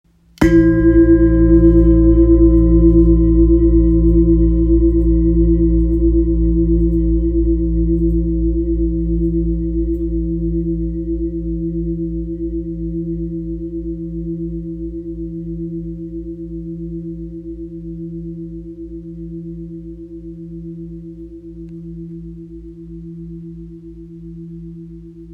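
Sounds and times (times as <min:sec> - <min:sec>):
8.17 kg low C sharp singing bowl: 0:00.4 - 0:25.3.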